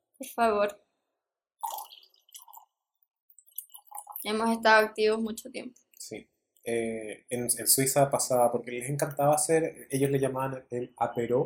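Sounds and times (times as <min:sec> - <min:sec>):
speech: 0:00.2 - 0:00.9, 0:04.2 - 0:11.4
wine glugging from a freshly opened bottle into a glass: 0:01.6 - 0:04.4.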